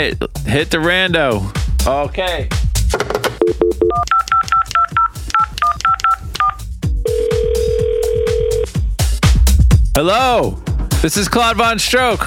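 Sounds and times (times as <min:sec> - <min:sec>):
speech: 0:00.0 - 0:04.0, 0:10.0 - 0:12.2
busy rhythmic background: 0:00.3 - 0:12.2
telephone keypad tones dialing a number: 0:03.4 - 0:08.7.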